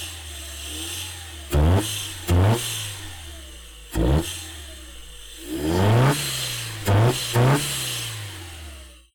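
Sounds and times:
car air filter: 0:01.4 - 0:08.5.

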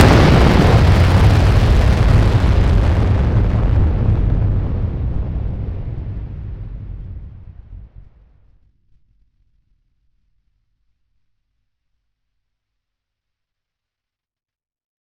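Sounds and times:
massive explosion: 0:00.0 - 0:08.5.

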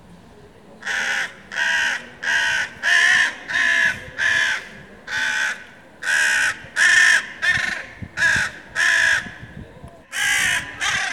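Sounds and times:
crow cawing: 0:00.8 - 0:09.4, 0:10.1 - 0:11.1.

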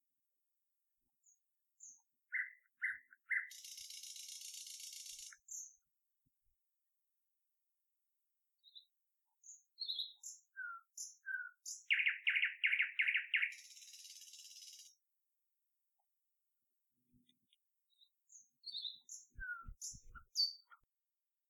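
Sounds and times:
bird calls with high chirps, whistled notes and a buzzy run: 0:01.8 - 0:05.7, 0:08.7 - 0:14.9, 0:17.9 - 0:20.8.

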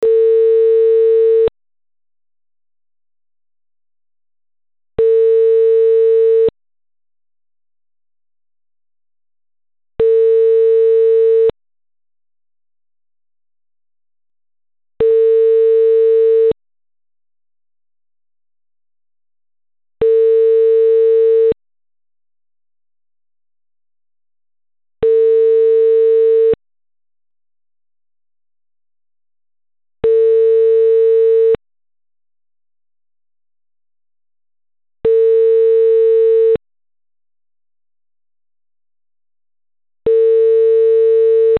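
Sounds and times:
phone call tone: 0:00.0 - 0:01.5, 0:05.0 - 0:06.6, 0:10.0 - 0:11.6, 0:15.0 - 0:16.6, 0:20.0 - 0:21.6, 0:25.0 - 0:26.6, 0:30.0 - 0:31.6, 0:35.0 - 0:36.6, 0:40.1 - 0:41.5.

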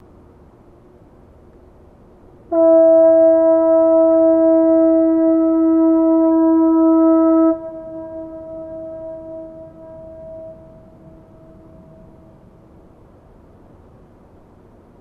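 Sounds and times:
foghorn blast: 0:02.5 - 0:12.6.

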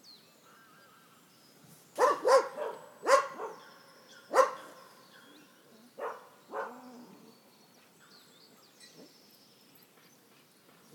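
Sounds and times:
dog barking in a forest as a jogger passes: 0:02.0 - 0:03.6, 0:04.3 - 0:04.8, 0:06.0 - 0:06.8.

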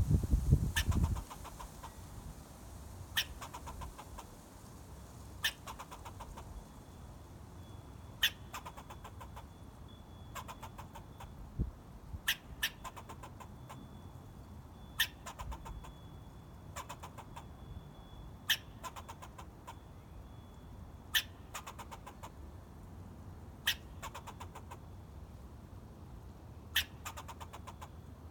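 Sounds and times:
squirrel chirping: 0:00.6 - 0:02.0, 0:03.1 - 0:04.2, 0:05.4 - 0:06.6, 0:08.1 - 0:11.4, 0:12.2 - 0:14.0, 0:14.8 - 0:16.0, 0:16.7 - 0:22.4, 0:23.6 - 0:24.8, 0:26.7 - 0:28.0.

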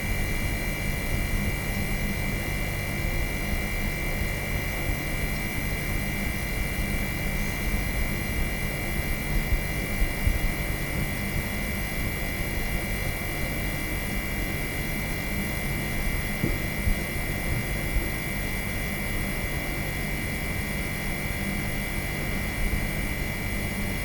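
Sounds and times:
fridge electric hum: 0:00.0 - 0:24.0.

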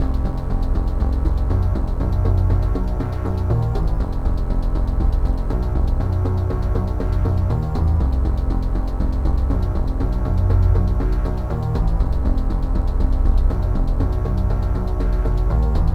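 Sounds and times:
poly synth bassline: 0:00.0 - 0:15.9.

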